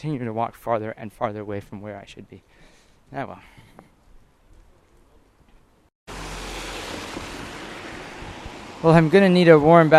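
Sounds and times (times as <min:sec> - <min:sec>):
speech: 0:00.0 - 0:03.9, 0:08.8 - 0:09.9
wind under a bridge arch: 0:00.0 - 0:09.9
loud rushing roar under a bridge arch: 0:06.1 - 0:09.9
water washing under a bridge arch: 0:06.1 - 0:09.9.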